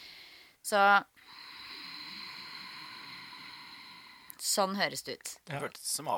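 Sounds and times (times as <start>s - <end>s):
speech: 0.7s - 1.4s, 4.4s - 6.1s
ujjayi yoga breath hissing in throat: 1.2s - 4.5s.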